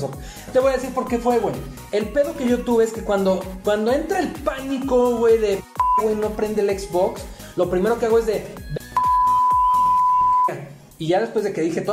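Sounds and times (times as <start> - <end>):
speech: 0.0 - 8.6, 10.5 - 11.9
long high-pitched censor bleep over swearing: 5.8 - 6.2, 8.8 - 10.6.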